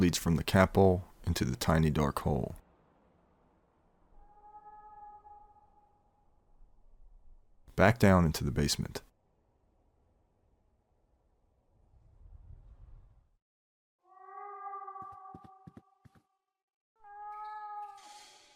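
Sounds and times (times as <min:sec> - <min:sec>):
speech: 0:00.0 - 0:02.6, 0:07.8 - 0:09.1
cat meowing behind a basement wall: 0:04.2 - 0:05.9, 0:14.0 - 0:15.8, 0:17.0 - 0:18.3.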